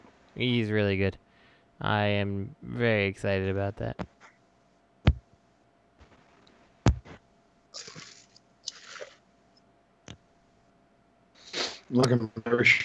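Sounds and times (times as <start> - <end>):
speech: 0.4 - 1.2, 1.8 - 4.1, 11.9 - 12.8
chewing food close to a microphone: 7.8 - 9.2
wet mouth noises: 7.8 - 9.2, 11.4 - 11.9.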